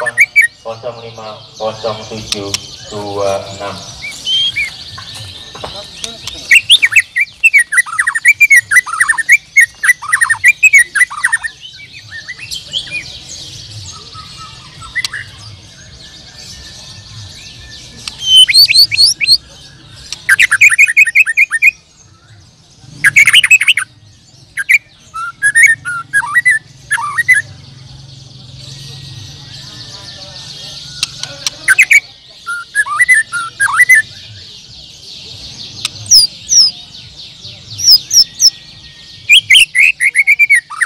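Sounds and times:
white-rumped shama singing: 0.0 - 0.7, 4.0 - 22.4, 23.0 - 27.6, 28.6 - 40.8
speech: 0.0 - 4.0, 18.8 - 19.6.

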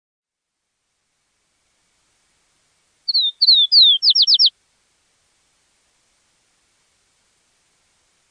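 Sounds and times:
bird call whistles: 3.1 - 4.5.

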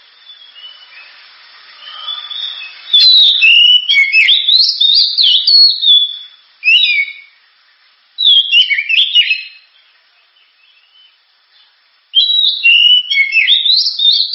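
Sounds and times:
Oriental magpie-robin song: 1.8 - 7.3, 8.2 - 9.8, 10.4 - 14.3.

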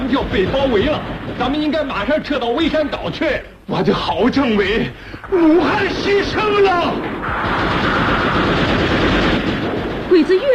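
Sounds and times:
machine-gun fire sound effect in a battle scene: 0.0 - 3.0, 5.4 - 10.5
speech: 0.2 - 9.0, 10.2 - 10.5.

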